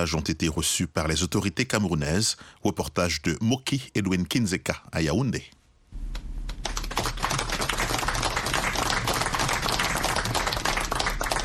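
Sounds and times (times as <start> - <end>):
speech: 0.0 - 5.6
large crowd applauding: 6.5 - 11.4.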